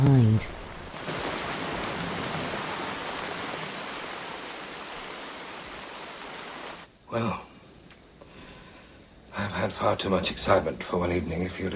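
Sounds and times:
speech: 0:00.0 - 0:00.6, 0:09.7 - 0:11.7
heavy driving rain: 0:00.0 - 0:06.9.

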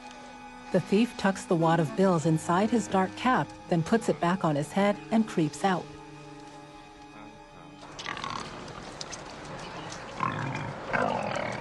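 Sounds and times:
speech: 0:00.7 - 0:05.9
herd of pigs grunting while foraging in a brown field: 0:08.0 - 0:08.8, 0:09.7 - 0:11.6.

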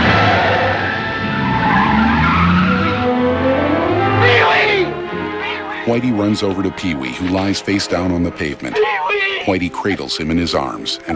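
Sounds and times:
car tires squealing and skidding: 0:00.0 - 0:06.2
car engine roar speeding down a highway: 0:00.0 - 0:06.7
speech: 0:05.9 - 0:11.1.

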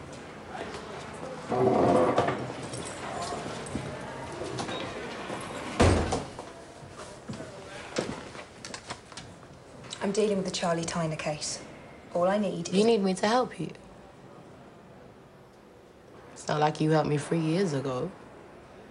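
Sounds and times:
faint indistinct voices: 0:00.0 - 0:18.8
speech: 0:01.5 - 0:01.9, 0:10.1 - 0:13.8, 0:16.5 - 0:18.2
door creaking and thumping: 0:05.7 - 0:06.4.

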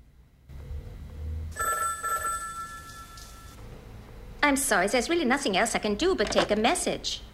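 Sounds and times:
low steady hum: 0:00.0 - 0:07.3
telephone ringing in a hotel suite: 0:01.6 - 0:03.6
speech: 0:04.5 - 0:07.3.

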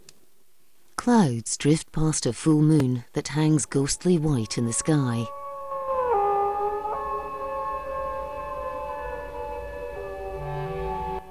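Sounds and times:
speech: 0:01.1 - 0:05.4
wolves howling together: 0:03.9 - 0:11.3.

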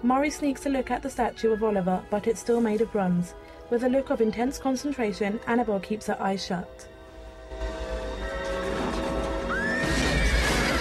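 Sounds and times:
speech: 0:00.0 - 0:06.9
horse whinnying: 0:08.3 - 0:10.7
clatter and crash of banging debris as a horse bursts out of a skip: 0:08.4 - 0:10.7.

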